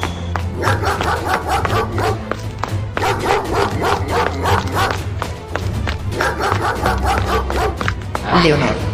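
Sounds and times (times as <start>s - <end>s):
dog barking and snarling while attacking a person: 0.5s - 2.4s, 3.0s - 5.1s, 6.0s - 8.0s
speech: 8.4s - 8.8s.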